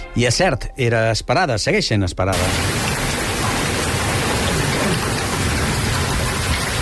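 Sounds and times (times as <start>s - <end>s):
speech: 0.2s - 2.8s
heavy rain in Catalonia: 2.3s - 6.7s.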